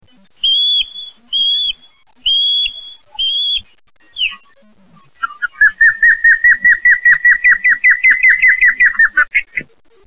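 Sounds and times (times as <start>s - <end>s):
Osprey calling with whistled and piping notes: 0.4s - 4.5s, 5.2s - 9.6s.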